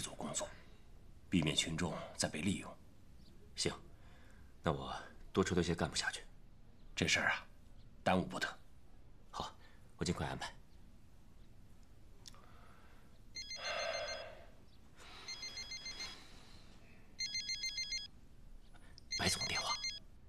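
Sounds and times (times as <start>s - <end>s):
speech: 0.4s - 0.6s, 1.3s - 2.8s, 3.6s - 3.9s, 4.6s - 6.3s, 7.0s - 8.6s, 9.3s - 10.6s, 19.2s - 19.7s
phone ringtone: 13.4s - 14.5s, 15.1s - 16.6s, 17.2s - 18.1s, 19.1s - 20.0s.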